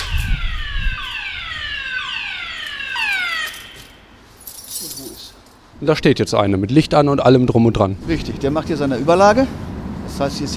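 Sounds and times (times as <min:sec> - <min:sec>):
alarm system at a tram depot wailing with falling electronic tones: 0:00.0 - 0:04.2
speech: 0:05.8 - 0:10.5.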